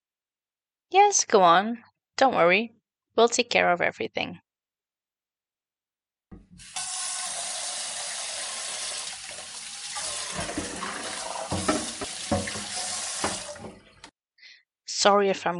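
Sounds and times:
speech: 0:01.0 - 0:04.4, 0:15.0 - 0:15.5
kitchen tap running into sink: 0:06.3 - 0:14.1
dishes clinking while being washed: 0:10.3 - 0:13.9.

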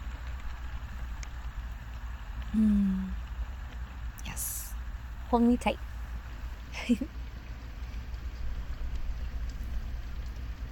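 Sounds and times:
steady rain: 0:00.0 - 0:10.7
speech: 0:02.5 - 0:03.0, 0:05.3 - 0:05.9, 0:06.9 - 0:07.2
faint vocal sound: 0:02.5 - 0:03.2.

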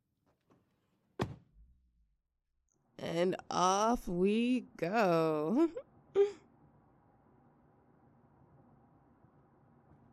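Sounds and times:
car door slamming shut: 0:01.2 - 0:01.6
speech: 0:03.0 - 0:06.4.

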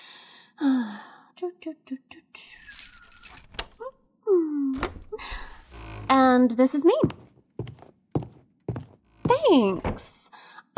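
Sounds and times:
speech: 0:01.6 - 0:02.6, 0:06.1 - 0:07.2, 0:09.5 - 0:10.2
keys jangling: 0:02.6 - 0:03.9
metallic thunk of a lock turning: 0:02.6 - 0:04.0
home door being unlocked and opened: 0:02.9 - 0:03.9, 0:04.8 - 0:06.2, 0:09.1 - 0:10.2.

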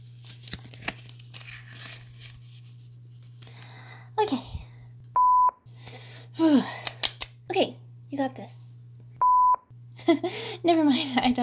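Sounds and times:
paper rustling and crinkling while being picked up and handled: 0:00.0 - 0:03.6
steady low electrical hum: 0:00.0 - 0:11.4
speech: 0:04.2 - 0:04.5, 0:10.6 - 0:11.4.

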